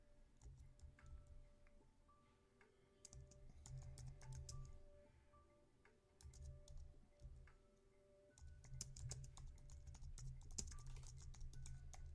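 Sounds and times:
rapid typing on a computer keyboard: 0.3 - 1.5, 3.0 - 4.9, 6.2 - 7.6, 8.3 - 12.1.

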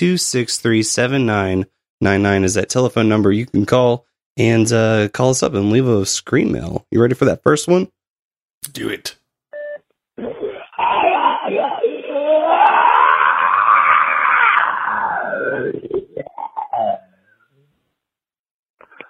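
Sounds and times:
speech: 0.0 - 8.0, 8.6 - 9.2, 10.2 - 10.4
recorded scream played back from a caller's voicemail: 10.2 - 17.1.

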